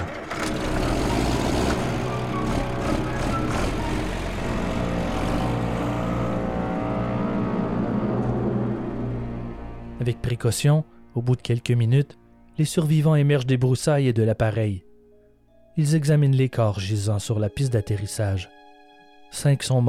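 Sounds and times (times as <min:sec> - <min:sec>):
vehicle engine rumbling as men drive off toward Jonestown: 0:00.0 - 0:10.0
speech: 0:10.0 - 0:14.9, 0:15.8 - 0:18.6, 0:19.3 - 0:19.8.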